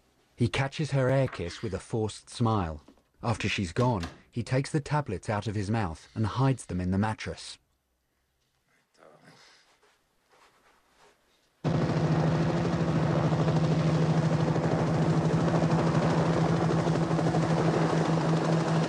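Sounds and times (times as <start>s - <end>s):
speech: 0.4s - 7.6s
helicopter rotor thump flying over a bend in a snowy road: 11.7s - 18.8s.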